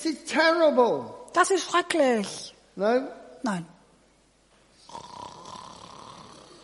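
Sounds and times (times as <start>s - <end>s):
speech: 0.0s - 3.7s
person imitating a snore: 4.8s - 6.6s.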